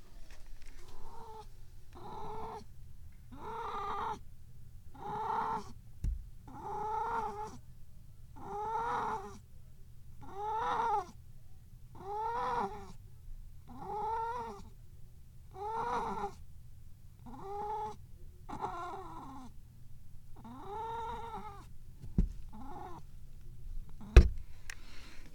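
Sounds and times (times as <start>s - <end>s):
cat yowling while defecating in a litter box: 1.0s - 1.4s, 2.0s - 2.6s, 3.3s - 4.2s, 5.0s - 5.7s, 6.5s - 7.6s, 8.4s - 9.4s, 10.2s - 11.2s, 12.0s - 13.0s, 13.7s - 14.7s, 15.6s - 16.4s, 17.2s - 19.5s, 20.4s - 21.7s, 22.5s - 23.0s.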